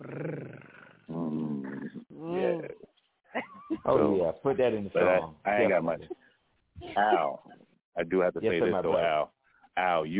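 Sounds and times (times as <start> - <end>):
person imitating a cat's purr with growly vocal bursts: 0.0 - 2.8
speech: 3.9 - 6.2, 7.0 - 10.1.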